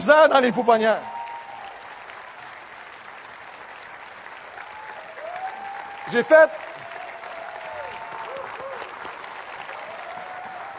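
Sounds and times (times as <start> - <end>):
speech: 0.0 - 1.1, 6.1 - 6.7
audience applauding: 0.0 - 10.7.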